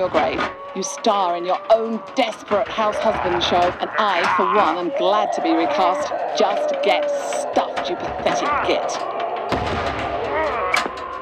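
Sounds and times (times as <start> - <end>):
speech: 0.0 - 9.9
booming gunshots from an army: 9.5 - 10.4.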